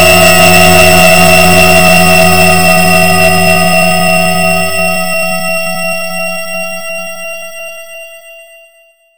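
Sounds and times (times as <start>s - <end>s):
retro weird psychedelic music: 0.0s - 5.4s.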